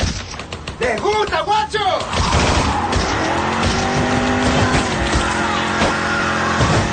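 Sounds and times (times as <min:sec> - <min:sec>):
speech: 0:00.8 - 0:02.2
coupé tires screeching: 0:01.8 - 0:06.9
coupé engine roaring while speeding through a crowd: 0:02.0 - 0:06.9.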